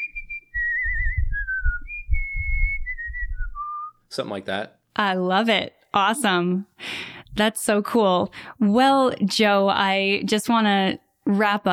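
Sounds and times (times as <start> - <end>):
person whistling a short wavering melody: 0.0 - 4.0
speech: 4.1 - 11.7.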